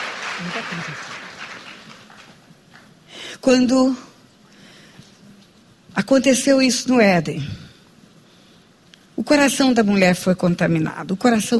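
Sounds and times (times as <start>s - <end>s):
voice beneath applause: 0.0s - 2.4s
audience applauding in a large room: 0.0s - 2.9s
speech: 0.4s - 1.3s, 3.4s - 4.1s, 6.0s - 7.6s, 9.3s - 11.5s.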